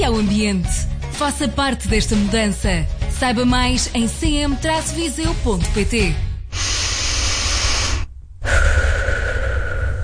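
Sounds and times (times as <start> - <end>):
speech: 0.1 - 6.3
person taking a deep breath of fresh air in nature: 6.3 - 10.0
person exhaling with a faint voiced sighing tone: 6.5 - 10.0.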